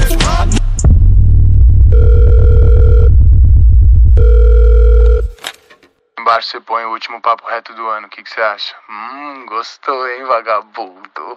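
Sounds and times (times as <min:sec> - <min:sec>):
low rhythmic throbbing hum: 0:00.8 - 0:05.3
telephone line beeps while a collect call is dialed: 0:01.9 - 0:05.3
speech: 0:06.4 - 0:11.3.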